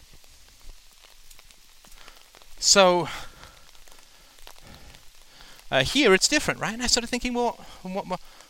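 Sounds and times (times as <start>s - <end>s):
soft rain falling outside: 0.0s - 8.4s
speech: 2.6s - 3.2s, 5.7s - 8.4s.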